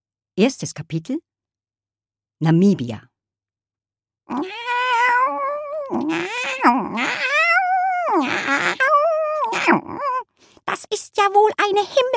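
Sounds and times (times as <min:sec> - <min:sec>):
speech: 0:00.4 - 0:01.3, 0:02.4 - 0:03.1, 0:04.3 - 0:04.7, 0:05.9 - 0:07.4, 0:08.2 - 0:12.1
cat in a carrier box at an airport caterwauling angrily: 0:04.3 - 0:10.3.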